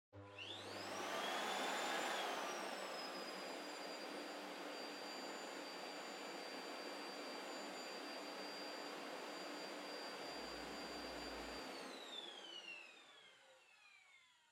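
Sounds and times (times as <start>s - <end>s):
distant vacuum cleaner running low: 0.2s - 14.3s.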